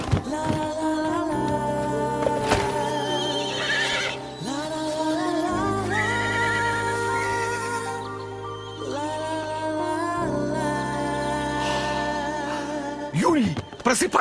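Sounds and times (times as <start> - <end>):
sustained musical backdrop: 0.0 - 14.1
winged horse whinnying: 3.2 - 4.2
speech: 13.9 - 14.1.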